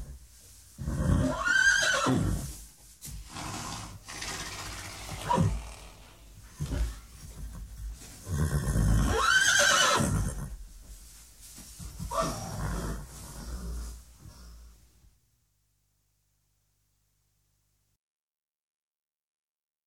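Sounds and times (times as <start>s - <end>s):
horses: 0.8s - 14.5s.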